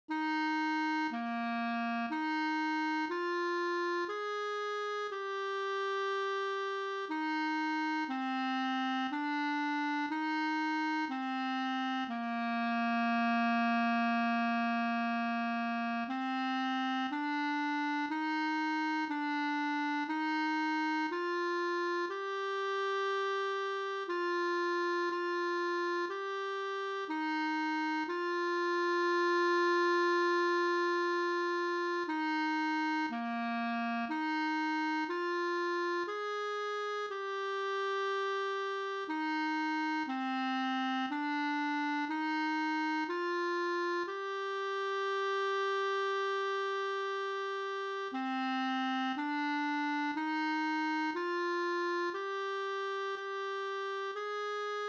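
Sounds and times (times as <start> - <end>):
clarinet chorale and recessional: 0.1 - 54.8.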